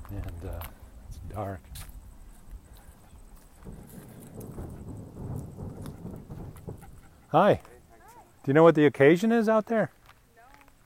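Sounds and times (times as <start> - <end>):
speech: 0.2 - 1.9, 7.3 - 7.7, 8.4 - 10.0
distant rhythmic drum banging with low thuds: 3.6 - 7.3.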